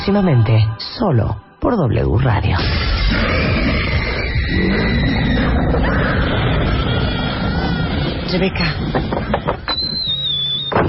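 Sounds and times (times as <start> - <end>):
speech: 0.0 - 3.7, 8.3 - 9.1
cabin door creaking open during a heavy storm: 2.6 - 10.8.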